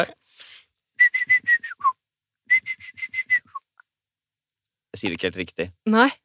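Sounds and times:
speech: 0.0s - 0.2s, 5.0s - 6.2s
breathy sound: 0.2s - 0.7s
person whistling an imitation of a great tit call: 1.0s - 3.7s.

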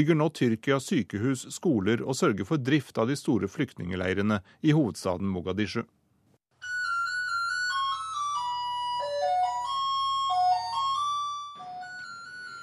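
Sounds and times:
speech: 0.0s - 6.0s
electronic school bell ringing for class at a boys' boarding school in Mogadishu: 6.6s - 12.6s.

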